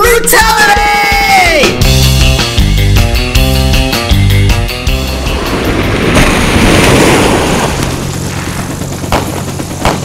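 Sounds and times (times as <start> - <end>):
loud musical passage: 0.3 - 6.6
ocean surf waves crashing: 4.8 - 10.0.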